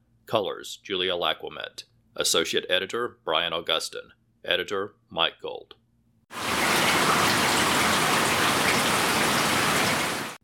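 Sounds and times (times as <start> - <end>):
speech: 0.3 - 6.5
heavy rain: 6.4 - 10.4.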